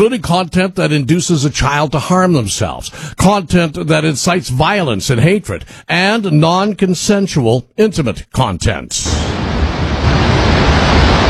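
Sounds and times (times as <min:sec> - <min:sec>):
speech: 0:00.0 - 0:09.6
wall of water roaring out of a dam spillway: 0:09.1 - 0:11.2.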